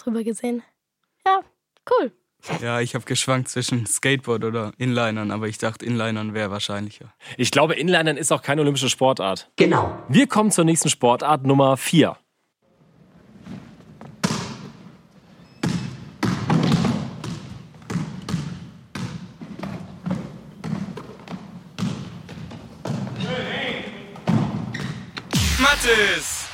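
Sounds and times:
speech: 0.0s - 12.2s
sneakers squeaking on a basketball court: 12.8s - 25.4s
basketball bouncing on a hard indoor floor: 13.9s - 25.4s.

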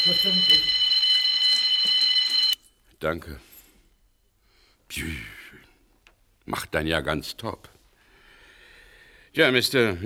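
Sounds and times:
speech: 0.0s - 0.8s, 3.0s - 3.5s, 4.9s - 5.4s, 6.5s - 7.8s, 9.3s - 10.0s
shrill high-pitched electronic alarm system ringing: 0.0s - 2.6s.

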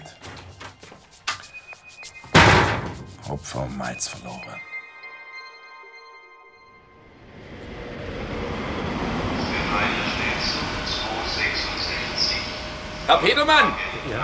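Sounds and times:
speech: 3.3s - 4.7s, 13.1s - 14.2s
train rolling through a train station: 7.0s - 14.2s.

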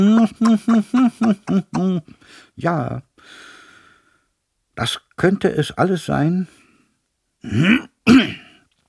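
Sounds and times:
throat clearing: 0.0s - 2.1s, 7.4s - 8.6s
speech: 0.0s - 3.5s, 4.8s - 6.6s, 7.4s - 8.4s.

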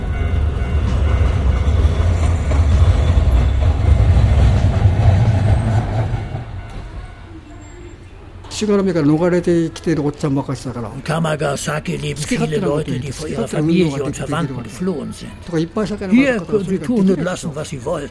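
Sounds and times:
train rumbling over railway tracks in Japan: 0.0s - 18.0s
speech: 8.6s - 18.0s
person's voice: 10.8s - 18.0s.

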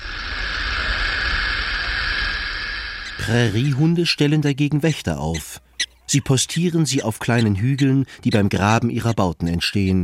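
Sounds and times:
burrowing owl buzzing hiss imitating a rattlesnake's rattle: 0.0s - 4.4s
speech: 3.3s - 10.0s.

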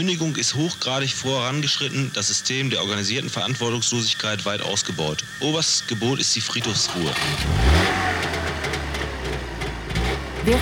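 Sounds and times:
speech: 0.0s - 8.9s
car engine humming and revving while driving: 6.6s - 10.5s.

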